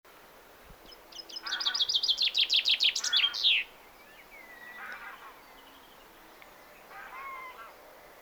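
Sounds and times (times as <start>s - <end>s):
common chaffinch Fringilla coelebs singing trill: 0.9s - 4.9s
faint bird calls: 0.9s - 8.2s.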